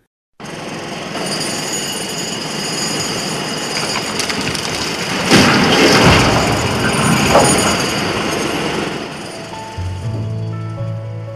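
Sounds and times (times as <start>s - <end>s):
construction blasting explosions in the Shekou industrial zone in Shenzhen China: 3.7s - 9.5s
continuous roaring rumble: 4.0s - 11.3s.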